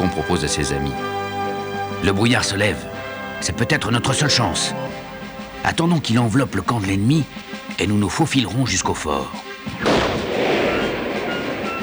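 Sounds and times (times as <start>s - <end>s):
speech: 0.1s - 1.2s, 2.0s - 5.0s, 5.6s - 10.0s
laughter: 9.0s - 11.8s
cannon firing a cannonball: 9.8s - 11.8s.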